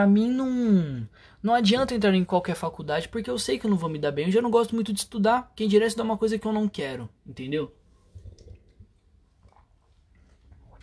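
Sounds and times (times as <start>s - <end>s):
speech: 0.0s - 7.8s
person sipping and swallowing water: 8.1s - 10.8s
small wet mouth clicks: 8.2s - 10.8s.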